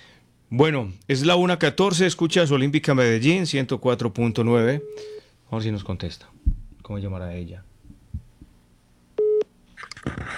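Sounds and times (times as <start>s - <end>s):
speech: 0.5s - 7.7s
short mid-pitched telephone line beep after a hung-up call: 9.2s - 9.5s.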